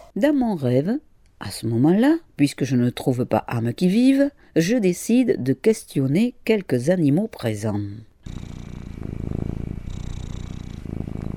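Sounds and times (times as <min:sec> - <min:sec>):
speech: 0:00.2 - 0:08.5
small cat purring: 0:08.2 - 0:11.3.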